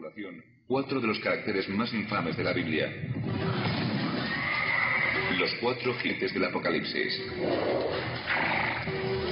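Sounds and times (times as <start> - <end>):
speech: 0.1 - 3.8, 5.4 - 9.0
horse neighing: 3.5 - 5.6, 7.3 - 9.2.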